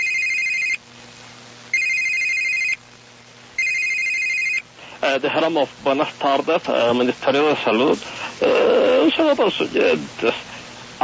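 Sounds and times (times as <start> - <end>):
telephone ringing on the line during a call: 0.0 - 0.8, 1.7 - 2.8, 3.6 - 4.6
speech: 5.0 - 11.0.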